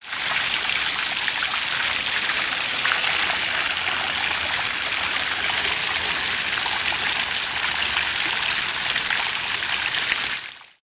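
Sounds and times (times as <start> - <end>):
fountain water: 0.0 - 10.8.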